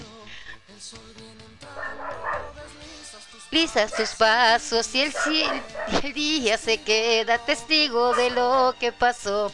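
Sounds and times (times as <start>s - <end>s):
dog's owner singing: 0.0s - 9.5s
speech: 0.8s - 9.5s
female dog barking: 1.7s - 2.6s, 3.8s - 4.4s, 5.0s - 6.2s, 8.0s - 8.4s.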